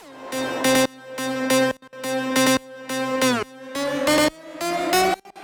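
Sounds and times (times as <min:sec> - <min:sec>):
trap synth lead: 0:00.0 - 0:05.1.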